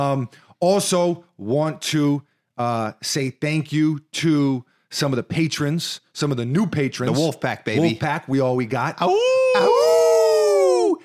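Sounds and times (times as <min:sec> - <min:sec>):
speech: 0:00.0 - 0:09.9
person imitating a wolf howl: 0:09.1 - 0:11.0.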